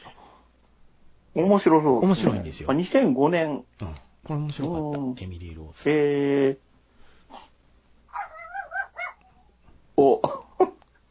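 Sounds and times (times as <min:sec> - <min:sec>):
speech: 0:01.4 - 0:06.7, 0:07.3 - 0:07.5
pet dog yelping and whiny high-pitched barking: 0:08.1 - 0:09.3.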